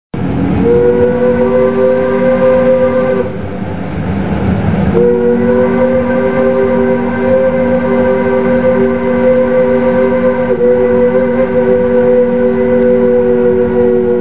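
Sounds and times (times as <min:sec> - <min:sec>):
train whistle: 0:00.2 - 0:03.7, 0:04.9 - 0:14.2.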